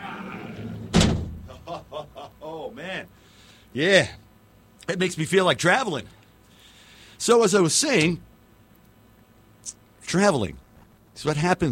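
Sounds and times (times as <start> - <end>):
heavy door slamming shut as it is locked for the night: 0.6 - 1.5
laughter: 1.5 - 2.9
speech: 3.7 - 4.2, 4.9 - 6.2, 7.2 - 8.3, 9.6 - 10.6, 11.2 - 11.7.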